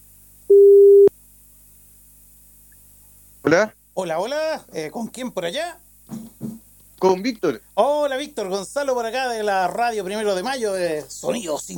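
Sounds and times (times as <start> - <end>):
telephone line tone beep while placing a call: 0.5 - 1.1
speech: 3.5 - 6.2, 7.0 - 11.7.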